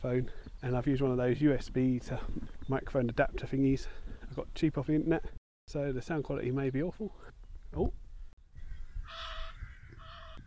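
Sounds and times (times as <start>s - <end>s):
speech: 0.0s - 8.0s
two Egyptian geese calling as they fly in: 8.7s - 10.4s.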